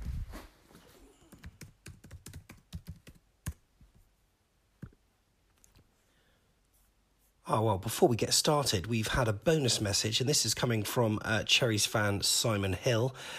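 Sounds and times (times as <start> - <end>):
typing on a laptop keyboard: 1.3 - 3.6
speech: 7.5 - 13.3.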